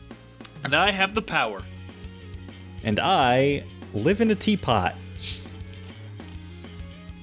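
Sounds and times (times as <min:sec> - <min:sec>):
speech: 0:00.6 - 0:01.8, 0:02.8 - 0:05.5
cold can of beer cracked open at the tab with fizzy hiss: 0:05.2 - 0:05.6.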